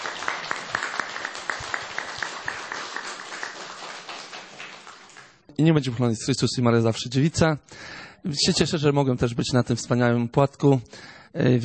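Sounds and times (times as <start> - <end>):
crowd applauding at a church Christmas wafer gathering: 0.0 - 5.4
speech: 5.6 - 11.6.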